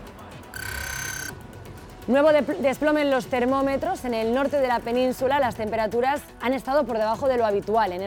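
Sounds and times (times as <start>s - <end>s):
electronic alarm clock tone: 0.5s - 1.4s
speech: 2.1s - 8.0s.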